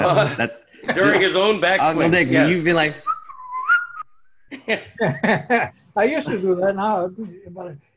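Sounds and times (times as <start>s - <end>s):
laughter: 0.0s - 2.6s, 4.5s - 6.5s
speech: 0.1s - 3.1s, 4.6s - 7.9s
person whistling a single short note imitating a golfer: 3.0s - 4.1s.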